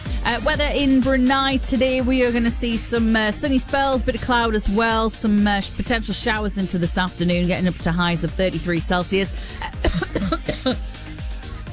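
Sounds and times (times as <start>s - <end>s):
speech: 0.2s - 10.9s
woman coughing in a rapid fit: 9.6s - 10.8s
woman's throat-clearing rasps: 9.6s - 10.8s, 11.4s - 11.7s.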